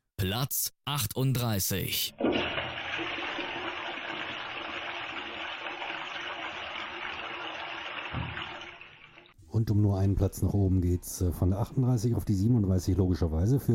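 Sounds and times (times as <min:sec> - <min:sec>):
speech: 0:00.2 - 0:02.6, 0:09.6 - 0:13.7
toilet flushing: 0:02.2 - 0:09.4.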